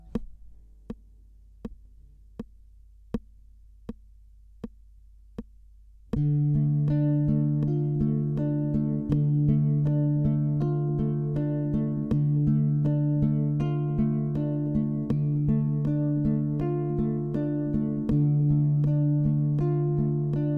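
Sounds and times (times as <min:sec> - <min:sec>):
D minor guitar chord: 0:06.2 - 0:20.5.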